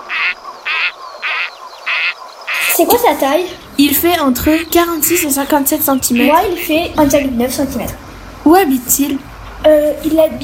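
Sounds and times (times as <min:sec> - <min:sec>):
gadwall duck giving harsh nasal quacks: 0:00.0 - 0:07.7
speech: 0:02.8 - 0:10.4.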